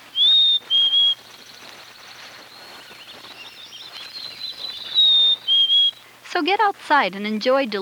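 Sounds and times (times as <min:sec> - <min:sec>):
faint bird twittering: 0:00.0 - 0:06.2
black-capped chickadee singing two-note spring song: 0:00.1 - 0:01.2, 0:02.5 - 0:06.0
speech: 0:06.4 - 0:07.8.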